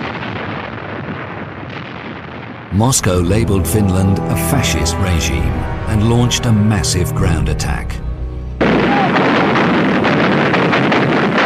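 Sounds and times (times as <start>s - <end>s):
bombs exploding as bombers attack a city: 0.0s - 3.0s, 8.6s - 11.4s
speech: 2.7s - 8.0s.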